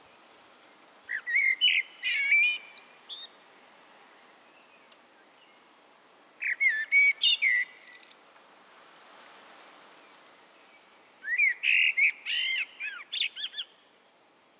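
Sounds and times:
Common blackbird Turdus merula singing: 0.0s - 5.7s, 6.4s - 8.2s, 10.6s - 13.8s
soft hissing background noise: 0.0s - 14.5s.

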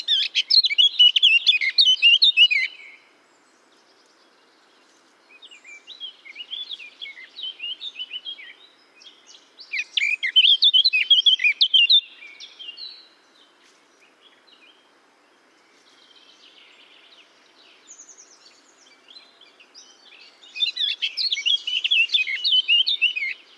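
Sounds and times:
Eurasian blackcap Sylvia atricapilla singing twittering and fluty whistled notes: 0.0s - 2.8s, 9.7s - 12.1s, 20.2s - 23.4s.

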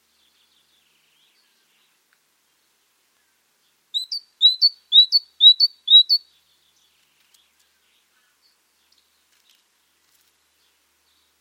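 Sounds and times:
great tit Parus major calling: 4.0s - 6.2s.

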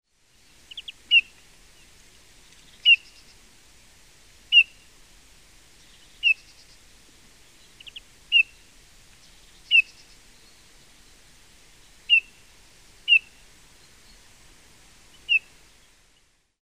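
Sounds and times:
Eurasian bullfinch Pyrrhula pyrrhula call notes: 0.7s - 1.3s, 6.2s - 6.7s, 7.8s - 8.7s, 9.6s - 10.2s, 12.1s - 12.4s, 13.1s - 13.4s, 15.2s - 15.5s.

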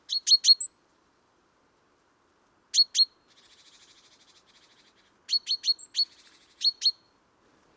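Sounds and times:
great tit Parus major sharp high ticking calls: 0.0s - 0.7s, 2.8s - 7.0s.

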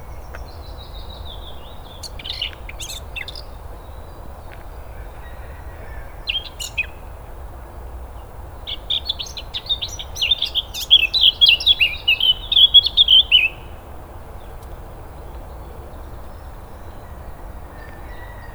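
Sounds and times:
Eurasian blackcap Sylvia atricapilla chirping and warbling with fluty whistled notes: 0.1s - 3.6s, 8.7s - 13.8s.

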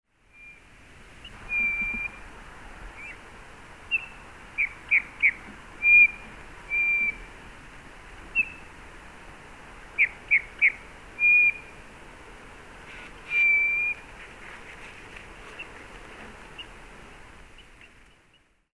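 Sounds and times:
quiet background hiss: 0.1s - 18.7s
Eurasian bullfinch Pyrrhula pyrrhula soft pure whistled calls: 0.3s - 2.2s, 3.0s - 3.2s, 3.9s - 7.3s, 8.3s - 8.6s, 10.0s - 11.8s, 12.9s - 14.0s.

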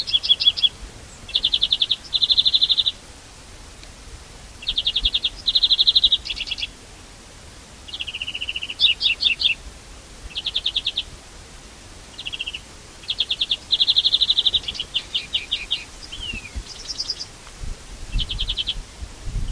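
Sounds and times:
European greenfinch Chloris chloris trilling song: 0.0s - 3.0s, 4.6s - 6.7s, 7.9s - 9.6s, 10.3s - 11.1s, 12.1s - 17.3s, 18.1s - 18.8s
light background hiss: 0.0s - 19.5s.

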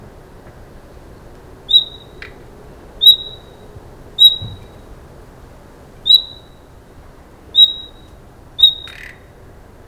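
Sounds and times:
common nightingale Luscinia megarhynchos calling with thin clear whistle: 1.7s - 2.2s, 3.0s - 3.6s, 4.2s - 4.8s, 6.1s - 6.6s, 7.6s - 9.2s.

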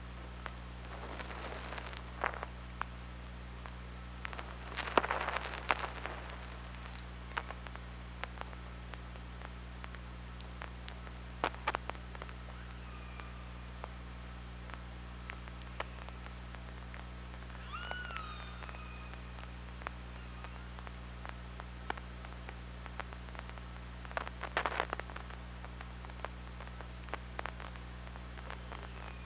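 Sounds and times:
steady low hum: 0.0s - 29.2s
scattered underwater clicks: 0.4s - 3.0s, 3.6s - 14.0s, 14.6s - 29.2s
killer whale call recorded by underwater hydrophone: 17.6s - 20.8s.

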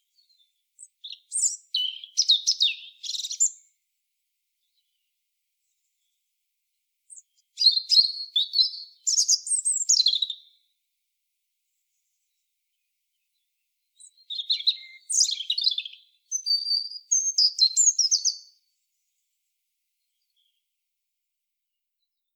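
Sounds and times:
European robin singing: 0.0s - 3.7s, 7.1s - 10.7s, 12.8s - 18.6s.

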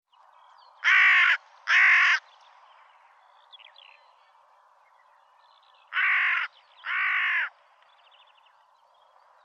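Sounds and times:
Carrion crow Corvus corone cawing: 0.8s - 2.2s, 5.9s - 7.6s.

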